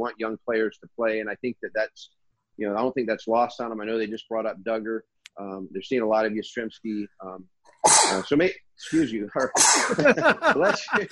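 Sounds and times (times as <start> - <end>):
speech: 0.0 - 11.0
sneeze: 7.8 - 8.3, 9.4 - 10.1
laughter: 9.4 - 11.0.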